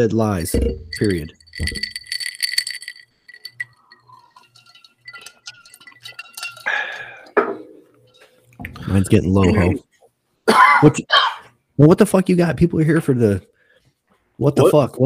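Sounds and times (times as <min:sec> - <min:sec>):
speech: 0:00.0 - 0:02.0, 0:08.9 - 0:09.9, 0:10.5 - 0:11.2, 0:11.8 - 0:13.5, 0:14.4 - 0:15.0
bright glassy clinks and clatter: 0:00.6 - 0:09.0.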